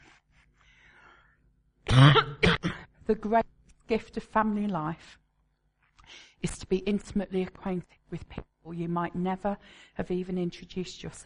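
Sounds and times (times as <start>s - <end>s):
speaker coughing during a talk: 1.9s - 3.0s
speech: 3.1s - 5.2s, 6.1s - 11.2s.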